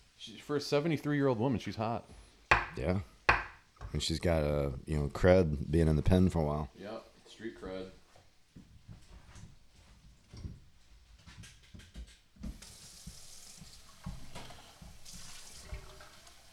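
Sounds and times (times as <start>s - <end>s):
speech: 0.2s - 2.2s, 2.8s - 3.1s, 3.9s - 8.0s
tap water running from a faucet into a glass: 12.4s - 16.5s.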